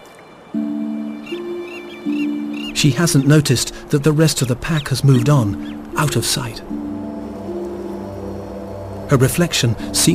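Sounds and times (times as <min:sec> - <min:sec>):
faint bird chirps: 0:00.0 - 0:06.1
steady low humming tone: 0:00.4 - 0:10.1
speech: 0:02.8 - 0:06.8, 0:09.1 - 0:10.1.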